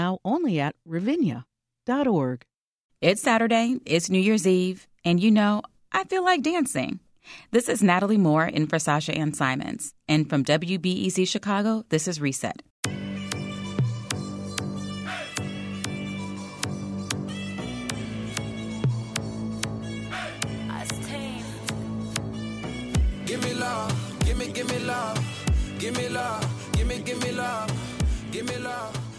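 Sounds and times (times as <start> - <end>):
speech: 0.0 - 13.0
R&B and Afrobeats music track with percussive beat and deep bass: 13.2 - 29.1.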